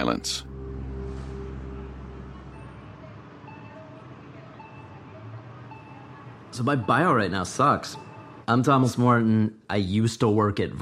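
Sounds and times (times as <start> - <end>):
speech: 0.0 - 0.5, 6.6 - 10.8
deeper engine drone: 0.0 - 5.6
faint passing vehicles: 0.0 - 9.1
street traffic rumbling outside an airport: 0.0 - 9.2.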